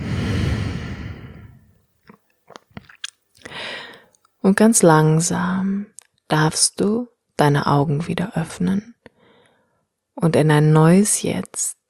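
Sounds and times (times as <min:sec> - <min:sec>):
slow breathing during a guided relaxation exercise: 0:00.0 - 0:01.8, 0:03.4 - 0:04.2, 0:09.1 - 0:09.9
soft mouth clicks: 0:02.0 - 0:04.3
speech: 0:04.4 - 0:08.9, 0:10.2 - 0:11.8.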